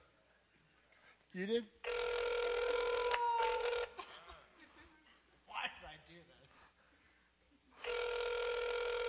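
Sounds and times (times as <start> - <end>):
speech: 1.3 - 1.9
phone ringback tone during unanswered outgoing call: 1.9 - 4.0, 7.8 - 9.0.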